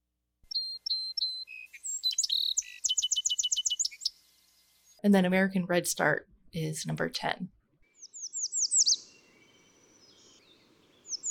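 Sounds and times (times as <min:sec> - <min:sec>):
Song Sparrow three-part song: 0:00.5 - 0:05.0, 0:07.9 - 0:11.2
speech: 0:05.0 - 0:07.6.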